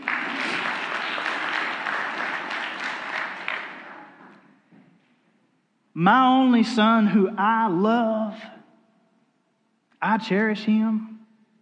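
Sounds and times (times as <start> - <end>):
audience applause: 0.0 - 4.4
speech: 6.0 - 8.6, 10.0 - 11.1.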